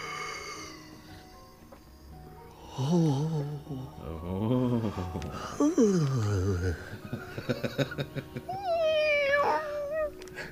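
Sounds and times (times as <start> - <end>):
indistinct human talk: 2.7 - 6.9
speech: 2.8 - 8.3
laughter: 4.5 - 8.8
cat meowing: 8.5 - 10.2.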